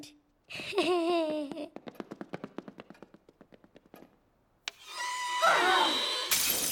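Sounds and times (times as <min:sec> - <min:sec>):
speech: 0:00.0 - 0:01.7
shrill squeak: 0:04.8 - 0:06.4
glass shattering with tinkling fragments: 0:06.3 - 0:06.7.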